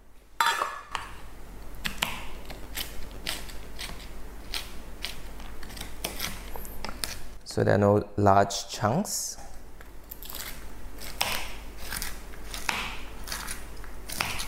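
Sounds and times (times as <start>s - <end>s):
knife roughly chopping walnuts or pecans: 1.8s - 7.2s, 10.1s - 14.4s
speech: 7.6s - 9.4s.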